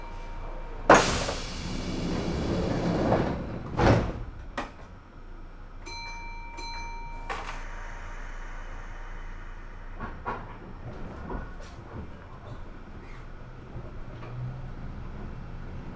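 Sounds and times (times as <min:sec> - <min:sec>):
train sliding doors closing with a pneumatic hiss: 0:00.1 - 0:05.0, 0:07.2 - 0:15.9
train doors thudding shut: 0:00.9 - 0:04.7
short electronic chime on a train: 0:05.9 - 0:10.0.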